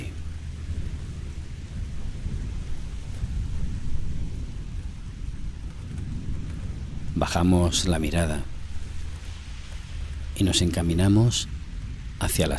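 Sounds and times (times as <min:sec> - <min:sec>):
deep low rumble: 0:00.0 - 0:12.5
heavy rain pouring: 0:00.0 - 0:12.5
speech: 0:07.2 - 0:08.5, 0:10.4 - 0:11.6, 0:12.2 - 0:12.5.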